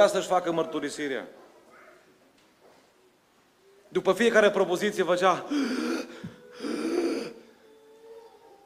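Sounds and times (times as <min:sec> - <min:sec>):
speech: 0:00.0 - 0:01.4, 0:03.9 - 0:06.0
person imitating labored gasping breathing of a sick man over the phone: 0:05.5 - 0:07.6.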